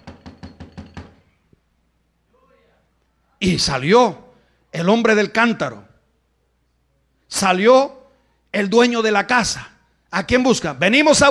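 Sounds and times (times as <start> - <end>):
quick firm knocks on a door: 0.0 - 1.3
speech: 3.4 - 5.9, 7.3 - 11.2.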